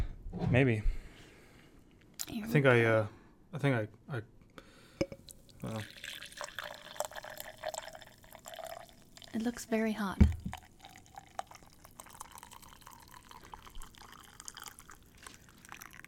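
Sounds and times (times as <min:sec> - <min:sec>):
speech: 0:00.5 - 0:01.0, 0:02.3 - 0:04.4, 0:05.6 - 0:06.2, 0:09.3 - 0:10.3
coffee pouring and dribbling: 0:05.2 - 0:16.0.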